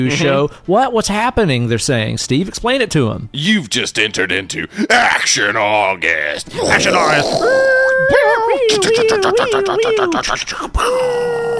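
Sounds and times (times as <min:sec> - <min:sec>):
speech: 0:00.0 - 0:11.5
person imitating a cat-like yowl: 0:06.5 - 0:09.2, 0:10.8 - 0:11.5
laughter: 0:06.7 - 0:11.0.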